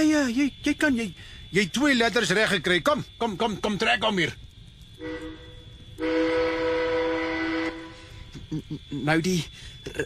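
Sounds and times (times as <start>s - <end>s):
speech: 0.0s - 4.4s, 8.5s - 10.0s
locomotive whistle blasts: 5.0s - 8.3s.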